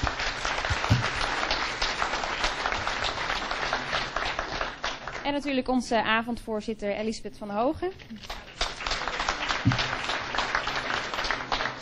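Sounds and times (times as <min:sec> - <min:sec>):
crowd applause: 0:00.0 - 0:05.6, 0:08.2 - 0:11.8
speech: 0:05.3 - 0:08.4, 0:09.6 - 0:10.0.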